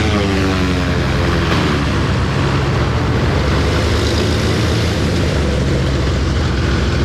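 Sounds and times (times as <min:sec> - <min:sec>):
propeller plane rolling in after landing with propellers spinning: 0:00.0 - 0:07.0.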